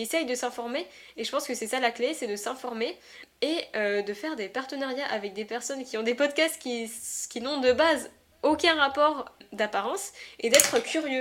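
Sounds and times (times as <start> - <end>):
speech: 0.0 - 11.1
pencil dropped onto a hard surface: 10.5 - 11.0.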